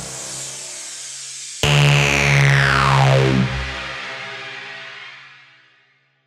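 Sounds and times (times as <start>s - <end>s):
pitch swell: 1.6s - 4.4s.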